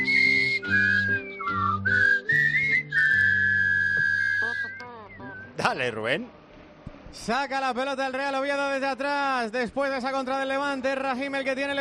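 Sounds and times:
person whistling a bright jaunty tune: 0.0 - 5.6
speech: 5.7 - 6.4, 7.1 - 11.7.

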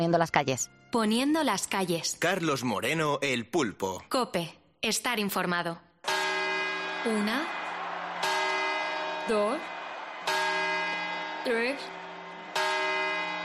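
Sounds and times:
speech: 0.0 - 6.2, 7.0 - 7.6, 9.3 - 9.7, 11.4 - 12.0
clock tower bell chimes: 6.1 - 13.4.

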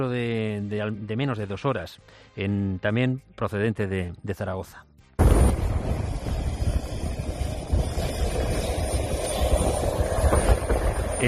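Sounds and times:
speech: 0.0 - 5.6
military airplane propeller engines running: 5.7 - 11.2.

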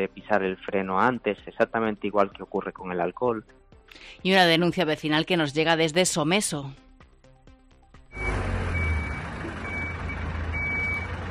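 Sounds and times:
speech: 0.0 - 6.8
garbage truck reversing alarm beeps: 8.1 - 11.2
garbage truck diesel engine rumbling: 8.1 - 11.3.

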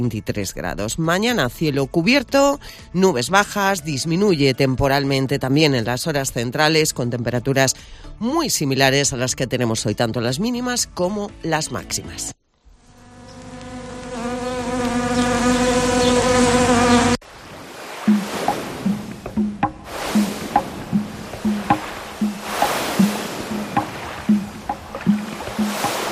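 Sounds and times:
speech: 0.0 - 12.4
wasp buzzing: 12.7 - 17.2, 18.0 - 26.1
rushing surf-like background: 17.3 - 26.1.

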